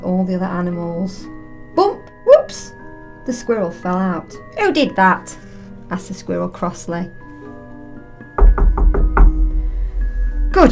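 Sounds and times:
speech: 0.2 - 2.6, 3.2 - 7.2
heavy knocking on a door: 8.4 - 9.6.

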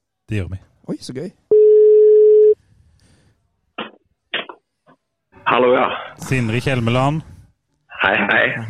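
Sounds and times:
speech: 0.3 - 1.4, 5.5 - 7.3, 8.0 - 8.6
phone ringback tone while placing a call: 1.5 - 2.6.

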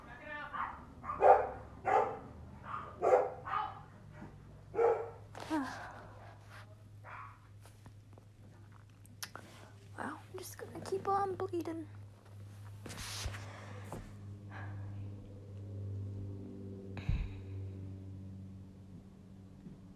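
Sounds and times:
dog barking: 0.5 - 5.3, 7.0 - 7.5
low steady hum: 2.6 - 19.9
speech: 11.0 - 12.0.

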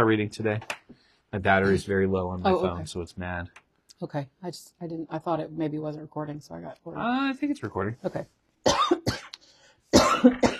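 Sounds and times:
speech: 0.0 - 8.8, 10.2 - 10.5
person coughing: 8.7 - 9.4, 10.0 - 10.5.

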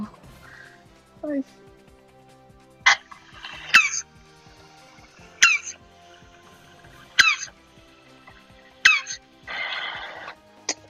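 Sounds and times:
tortoises grunting while mating: 2.9 - 10.4.

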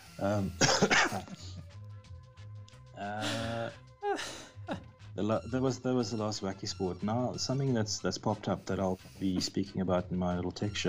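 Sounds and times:
speech: 0.2 - 1.7, 3.0 - 10.8
cat coughing: 0.4 - 1.5.

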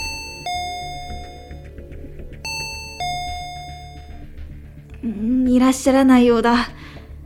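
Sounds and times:
apartment intercom doorbell two-tone chime: 0.0 - 1.7, 2.5 - 4.4
low steady hum: 0.0 - 1.7, 2.5 - 4.4
speech: 5.0 - 6.8.

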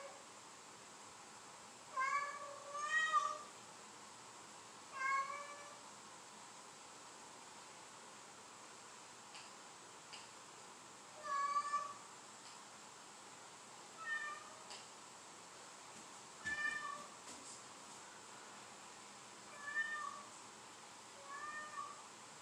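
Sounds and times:
cat meowing: 2.0 - 3.5, 4.9 - 5.8, 11.2 - 12.0, 14.0 - 14.7, 16.5 - 17.1, 19.5 - 20.3, 21.2 - 22.0.

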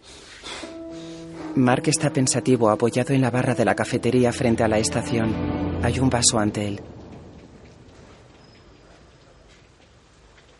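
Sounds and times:
speech: 1.6 - 7.0
steady rain falling as an even hiss: 5.0 - 10.5.

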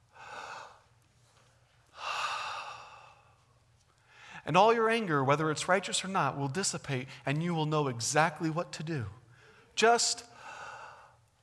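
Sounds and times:
person taking a slow deep breath: 0.1 - 0.8, 2.0 - 3.4, 4.0 - 4.4, 10.4 - 11.2
speech: 4.5 - 9.2, 9.8 - 10.3.

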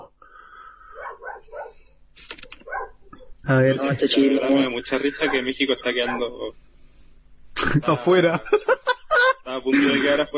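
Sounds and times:
dogs barking and yelping: 0.9 - 1.8, 2.5 - 3.4, 6.0 - 6.4
speech: 3.5 - 6.6, 7.7 - 8.7, 9.5 - 10.3
laughter: 3.8 - 6.5, 7.6 - 10.3.

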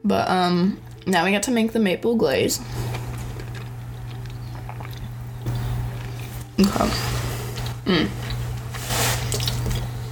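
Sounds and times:
low electrical hum: 0.0 - 10.1
speech: 0.1 - 2.9, 6.6 - 7.1, 7.9 - 8.2
chewing scone dough: 2.7 - 10.0.

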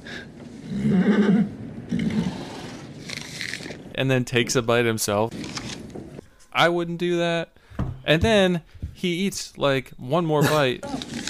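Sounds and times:
horse whinnying: 0.7 - 2.7
speech: 4.0 - 5.6, 6.6 - 11.2.

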